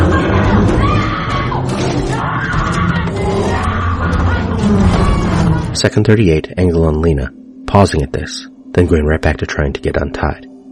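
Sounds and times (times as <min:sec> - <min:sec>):
woman screaming during bear attack: 0:00.0 - 0:05.7
constant rough rumbling roar of low noise: 0:00.0 - 0:05.8
speech: 0:05.8 - 0:10.5.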